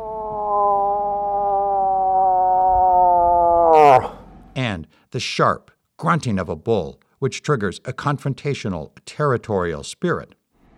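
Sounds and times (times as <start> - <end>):
human imitation of a cow elk's siren mating call: 0.0 - 4.2
speech: 4.6 - 10.4.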